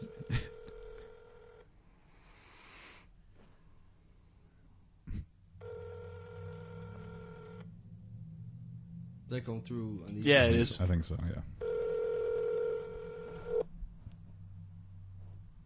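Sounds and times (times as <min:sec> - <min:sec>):
dial and ringback tones on a speakerphone line: 0:00.0 - 0:01.6, 0:05.6 - 0:07.6, 0:11.6 - 0:13.7
speech: 0:09.3 - 0:11.6.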